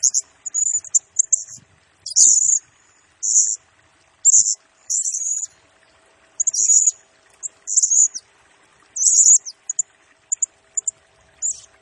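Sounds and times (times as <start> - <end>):
blue-crowned hanging parrot singing shrill buzzy high-pitched phrases: 0.0 - 3.6, 4.2 - 5.6, 6.4 - 8.3, 8.9 - 11.8.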